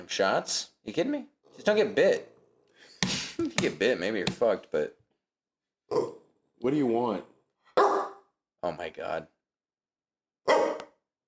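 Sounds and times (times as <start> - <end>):
speech: 0.0 - 2.3, 3.4 - 5.0, 5.9 - 7.3, 8.6 - 9.3
raspy buzzy dog bark: 7.8 - 8.3.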